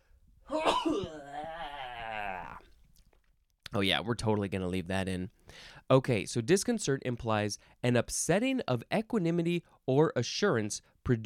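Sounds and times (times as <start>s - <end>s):
person sneezing: 0.5s - 1.9s
speech: 3.7s - 11.2s.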